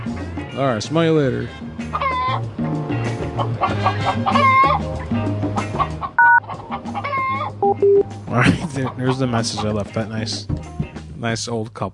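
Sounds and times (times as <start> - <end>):
speech: 0.1 - 2.7, 3.4 - 5.4, 7.8 - 11.9
chickens clucking and squawking on a farm: 3.3 - 7.6, 8.5 - 9.8.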